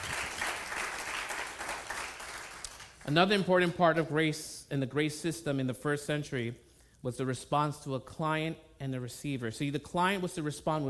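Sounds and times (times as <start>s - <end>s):
audience applause: 0.0s - 3.0s
speech: 3.1s - 10.8s.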